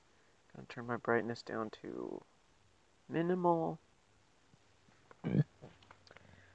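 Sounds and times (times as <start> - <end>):
speech: 0.6 - 2.3, 3.1 - 3.8
faint clicks: 5.0 - 6.4
short low guttural burp: 5.2 - 5.6.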